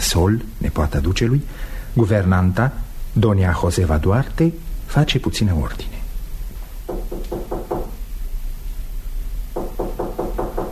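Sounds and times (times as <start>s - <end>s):
steady low hum: 0.0s - 10.7s
speech: 0.1s - 6.0s
knocking on a door at a duke's palace: 6.9s - 8.0s, 9.6s - 10.7s.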